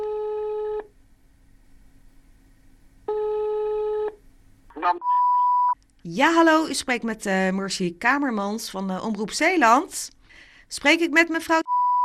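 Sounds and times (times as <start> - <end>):
different steady tone on a phone line: 3.1 - 4.1, 4.7 - 5.8, 11.7 - 12.0
speech: 4.8 - 5.2, 6.0 - 11.6.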